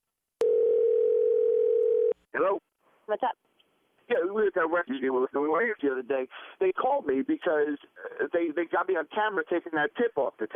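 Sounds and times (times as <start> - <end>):
outgoing phone call ringing tone: 0.4 - 2.2
speech: 2.4 - 3.4, 4.1 - 10.5.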